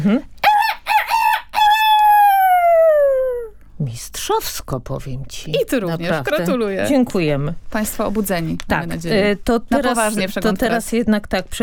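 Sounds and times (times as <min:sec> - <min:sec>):
speech: 0:00.0 - 0:00.3, 0:03.8 - 0:11.6
person imitating a rooster crowing: 0:00.0 - 0:03.6.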